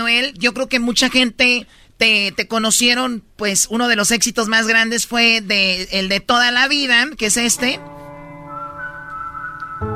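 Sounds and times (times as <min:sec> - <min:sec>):
speech: 0:00.0 - 0:08.1
steady musical backing: 0:07.4 - 0:09.9
whistled melody from a song: 0:08.1 - 0:09.9.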